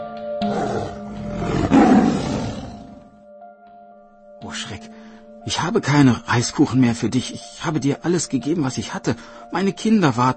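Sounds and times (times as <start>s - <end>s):
tiger roaring: 0.5s - 3.1s
speech: 5.5s - 10.3s.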